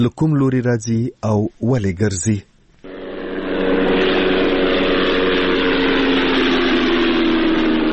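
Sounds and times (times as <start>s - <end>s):
speech: 0.0s - 2.5s
unmanned drone flying in the sky over Ghazni province Afghanistan: 2.8s - 7.9s.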